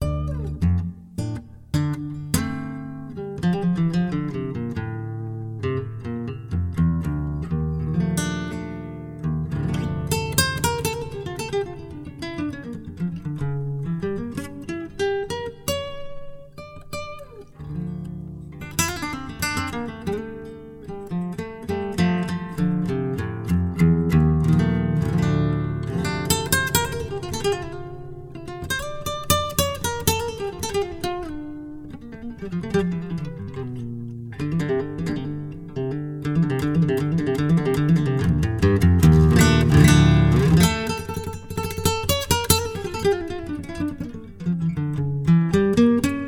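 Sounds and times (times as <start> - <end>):
acoustic love song: 0.0 - 46.2.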